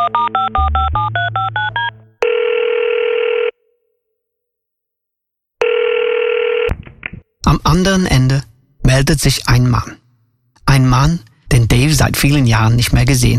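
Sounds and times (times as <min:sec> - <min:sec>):
steady phone ringback tone: 0:00.0 - 0:03.6, 0:05.6 - 0:06.7
speech: 0:07.8 - 0:08.4, 0:09.0 - 0:10.0, 0:10.7 - 0:13.3.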